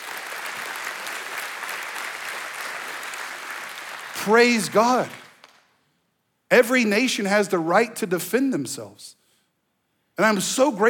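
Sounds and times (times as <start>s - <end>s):
audience applause: 0.0s - 5.6s
speech: 4.2s - 5.2s, 6.5s - 9.2s, 10.2s - 10.8s.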